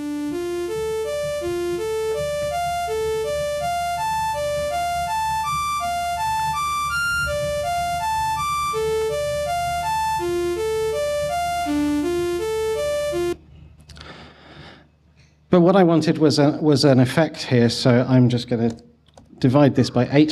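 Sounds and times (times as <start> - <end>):
slowed-down synthesizer arpeggios: 0.0 - 13.4
speech: 15.5 - 20.3.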